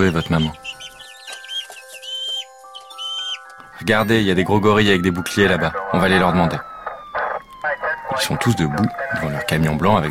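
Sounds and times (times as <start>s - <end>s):
speech: 0.0s - 0.8s, 3.8s - 6.7s, 8.2s - 10.0s
chicks peeping: 0.0s - 3.6s
steady tones: 0.0s - 10.0s.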